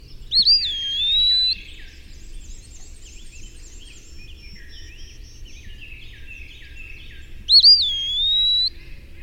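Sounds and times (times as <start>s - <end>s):
eastern wood pewee calling: 0.0s - 1.8s, 7.5s - 8.8s.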